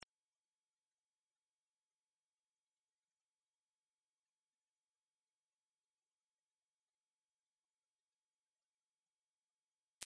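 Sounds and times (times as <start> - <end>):
mosquito tone at 17400Hz: 0.0 - 10.0.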